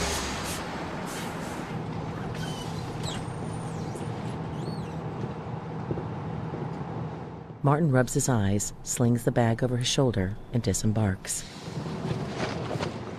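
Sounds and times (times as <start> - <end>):
bus air brakes squealing and hissing: 0.0 - 5.0
bus engine rumble coming to a stop: 0.0 - 13.1
road noise: 0.0 - 13.1
speech: 7.6 - 11.6.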